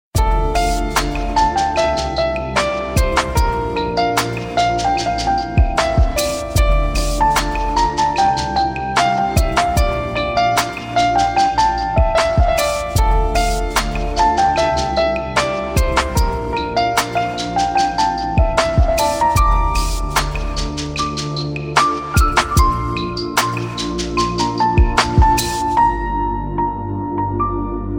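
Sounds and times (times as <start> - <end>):
piano music: 0.2 - 27.9.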